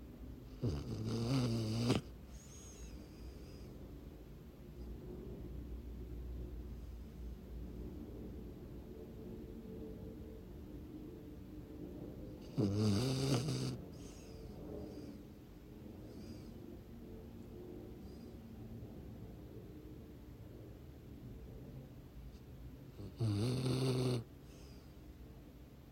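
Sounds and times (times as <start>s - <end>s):
quiet low hum: 0.0s - 25.9s
loud rasping snores: 0.6s - 2.9s, 12.4s - 14.2s, 23.0s - 24.3s.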